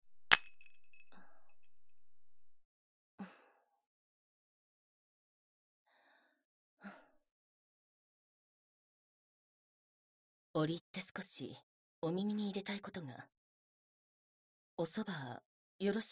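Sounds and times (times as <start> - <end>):
two glasses clinking in a toast: 0.2 - 1.2
speech: 10.6 - 13.4, 14.8 - 16.1.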